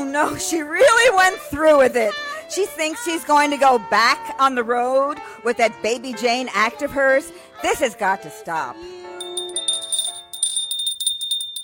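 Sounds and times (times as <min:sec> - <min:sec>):
speech: 0:00.2 - 0:09.0
hand bell rung by a woman upstairs: 0:09.2 - 0:11.6.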